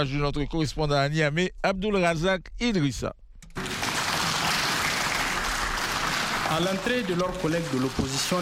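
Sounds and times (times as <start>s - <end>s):
speech: 0.0s - 3.2s, 6.5s - 8.4s
thunderous applause from majority deputies in a parliament chamber: 3.6s - 8.4s.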